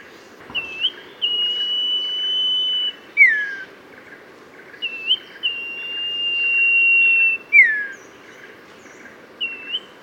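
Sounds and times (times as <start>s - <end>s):
Oriental magpie-robin whistling song: 0.5s - 3.7s, 4.7s - 8.2s, 9.4s - 10.0s.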